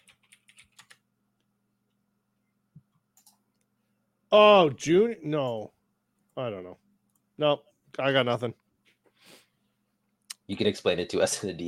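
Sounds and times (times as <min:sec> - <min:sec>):
crisp clicky typing on a computer keyboard: 0:00.0 - 0:01.0, 0:03.2 - 0:03.4
faint steady hum: 0:00.0 - 0:11.6
speech: 0:04.3 - 0:05.8, 0:06.4 - 0:06.8, 0:07.4 - 0:08.6, 0:10.5 - 0:11.6.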